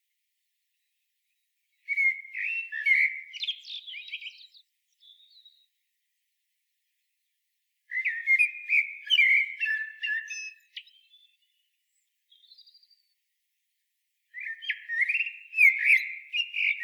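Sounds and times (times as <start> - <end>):
common blackbird singing: 1.9 - 5.7, 7.9 - 11.7, 12.3 - 13.1, 14.3 - 16.8.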